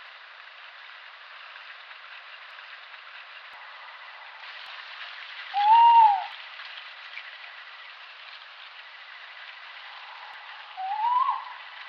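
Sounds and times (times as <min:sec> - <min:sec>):
quiet hiss: 0:00.0 - 0:11.8
Tawny owl Strix aluco short arched whistle call: 0:05.5 - 0:06.3, 0:10.7 - 0:11.7.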